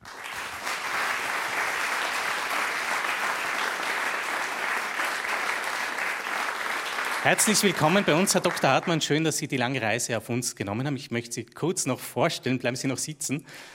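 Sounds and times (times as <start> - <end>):
audience applause: 0.0 - 9.2
speech: 7.2 - 13.7.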